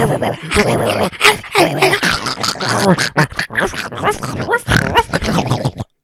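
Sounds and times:
person imitating a vicious rabid dog snarling and growling: 0.0s - 6.0s.

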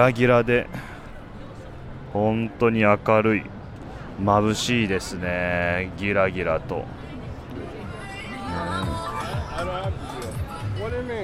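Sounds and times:
speech: 0.0s - 0.9s, 2.1s - 3.6s, 4.2s - 7.0s
dense crowd chatter of pedestrians in Times Square: 0.0s - 11.2s.

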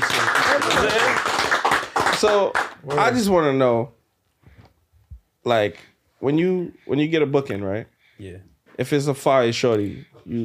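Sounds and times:
hands clapping applauding a man: 0.0s - 3.3s
overlapping voices talking over the applause: 0.0s - 3.4s
speech: 2.2s - 4.0s, 5.4s - 10.4s.

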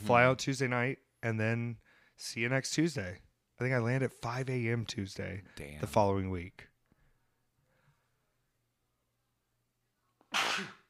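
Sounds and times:
speech: 0.1s - 6.7s, 10.6s - 10.8s
sneeze: 10.3s - 10.8s.

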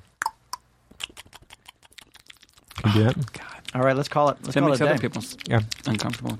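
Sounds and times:
loud chewing: 0.9s - 6.3s
speech: 2.9s - 6.3s.

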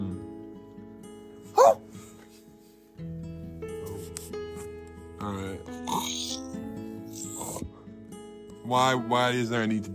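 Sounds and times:
person imitating dog barking: 1.5s - 1.8s
speech: 8.7s - 9.9s.

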